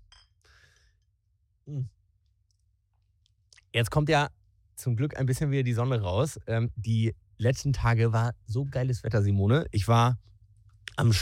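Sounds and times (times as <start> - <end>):
glasses clinking in a toast: 0.0 - 0.4
low hum: 0.0 - 11.2
speech: 1.7 - 2.0, 3.7 - 10.3, 10.9 - 11.2.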